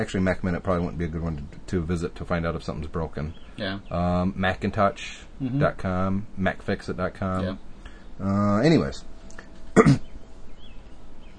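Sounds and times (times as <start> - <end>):
speech: 0.0 - 9.1, 9.8 - 10.0
single short sharp cough: 9.7 - 10.1.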